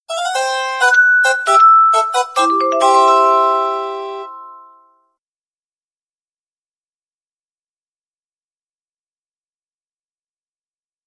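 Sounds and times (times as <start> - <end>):
ringtone: 0.1 - 5.0.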